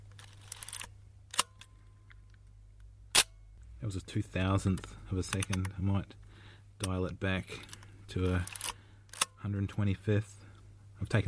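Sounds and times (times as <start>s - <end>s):
camera shutter firing with the lens off: 0.0s - 1.7s, 3.2s - 3.4s, 7.6s - 9.3s
sharp loud camera shutter click with a ringing tail: 3.1s - 3.4s
speech: 3.9s - 6.2s, 6.8s - 8.7s, 9.4s - 10.4s, 11.0s - 11.2s.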